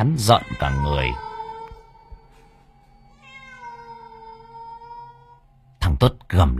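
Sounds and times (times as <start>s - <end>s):
speech: 0.0s - 1.3s, 6.0s - 6.5s
green-eyed cat meowing: 0.1s - 5.5s.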